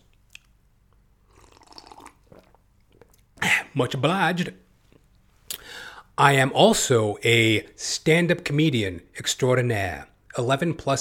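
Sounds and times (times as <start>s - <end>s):
person slurping while sipping water: 0.1s - 3.6s
small swallow: 1.3s - 3.3s
speech: 3.8s - 4.6s, 6.2s - 10.9s
quiet breathing: 5.6s - 6.2s.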